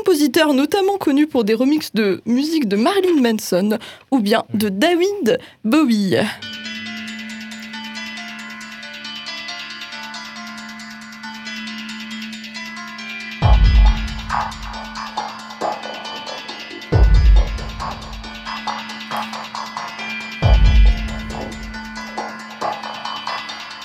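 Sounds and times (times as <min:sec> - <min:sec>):
speech: 0:00.0 - 0:06.6
sustained droning tone in dark electronic horror score: 0:06.5 - 0:23.8
heavy booming low hits: 0:13.4 - 0:14.4
dense tense synth textures in dark electronic horror score: 0:13.4 - 0:23.8.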